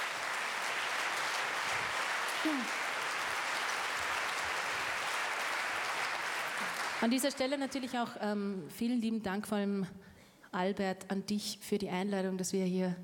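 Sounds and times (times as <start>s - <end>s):
audience applause: 0.0s - 7.9s
speech: 2.4s - 2.8s, 7.0s - 13.0s.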